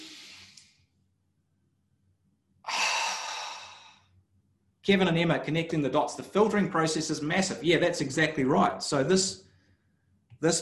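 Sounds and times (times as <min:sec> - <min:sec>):
people taking a big deep breath: 0:00.0 - 0:00.6, 0:02.7 - 0:04.0
speech: 0:04.8 - 0:09.5, 0:10.4 - 0:10.6.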